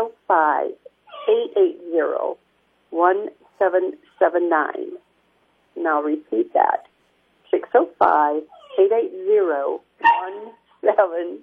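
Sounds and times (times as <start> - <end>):
speech: 0.3 - 5.0, 5.8 - 6.9, 7.5 - 11.4
dog barking and whimpering: 1.0 - 1.5, 8.4 - 9.0, 10.0 - 10.8.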